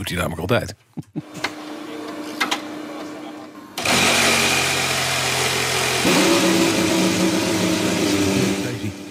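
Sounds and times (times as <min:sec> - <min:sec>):
speech: 0:00.0 - 0:01.4
new Mercedes Formula 1 car engine starting up: 0:03.8 - 0:09.0.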